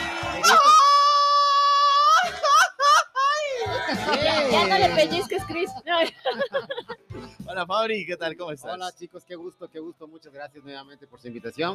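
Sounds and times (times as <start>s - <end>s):
high wailing Mexican celebratory grito shout: 0.0s - 4.1s
laughter: 1.9s - 7.1s
speech: 4.5s - 11.7s.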